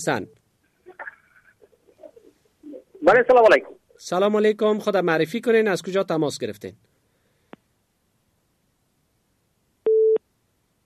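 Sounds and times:
speech: 0.0 - 0.4, 3.0 - 6.9
telephone busy tone after a call is cut off: 9.9 - 10.2.

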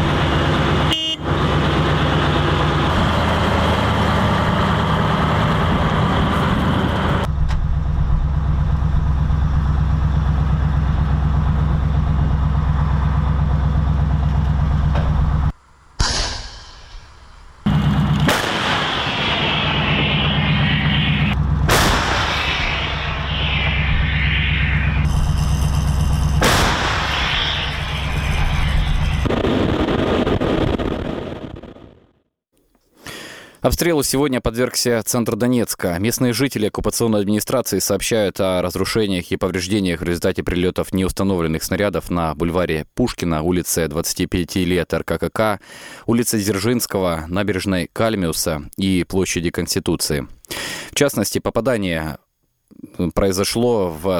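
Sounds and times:
heavy artillery gun engine rumbling while driving: 0.0 - 30.0
vehicle noise: 0.0 - 30.2
artillery gun firing powerful blasts: 16.0 - 20.5, 21.7 - 22.6, 26.4 - 27.4
speech: 33.7 - 54.1.

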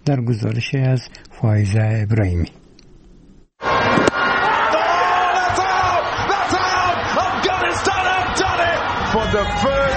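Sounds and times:
speech: 0.0 - 2.6
large street crowd cheering and shouting celebrating a cricket victory: 3.6 - 9.9.

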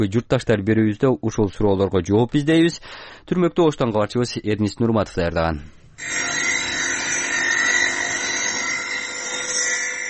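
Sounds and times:
speech: 0.0 - 6.5
machinery cutting marble travertine stone at a factory: 6.0 - 10.0.

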